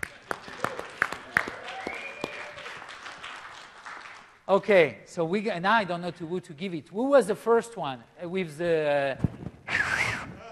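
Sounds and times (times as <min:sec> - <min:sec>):
scattered audience applause in a large room: 0:00.0 - 0:04.4
speech: 0:04.5 - 0:09.3.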